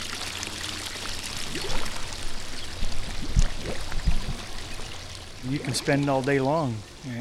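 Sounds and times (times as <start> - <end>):
water bubbling and gurgling underwater in a swimming pool: 1.1 - 5.9
speech: 5.5 - 7.2.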